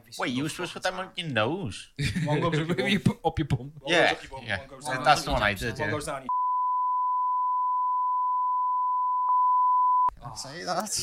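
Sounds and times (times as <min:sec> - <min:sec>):
speech: 0:00.1 - 0:06.4, 0:10.2 - 0:11.0
censor bleep tone: 0:06.3 - 0:10.1.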